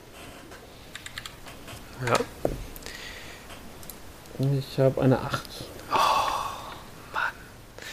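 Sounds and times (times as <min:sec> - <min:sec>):
soft hiss: 0:00.0 - 0:07.9
crisp computer clicks rolling digital dice: 0:00.9 - 0:01.4
speech: 0:02.0 - 0:02.4, 0:04.4 - 0:05.7.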